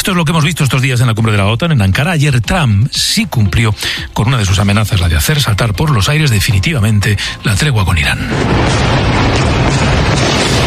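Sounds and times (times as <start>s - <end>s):
speech: 0.1s - 10.6s
explosions from overnight bombing in Iran: 7.9s - 10.6s.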